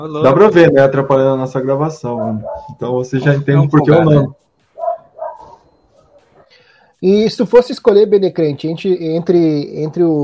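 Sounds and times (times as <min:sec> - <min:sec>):
speech: 0:00.0 - 0:04.4, 0:07.0 - 0:10.2
dog barking: 0:02.1 - 0:02.8, 0:04.8 - 0:06.5.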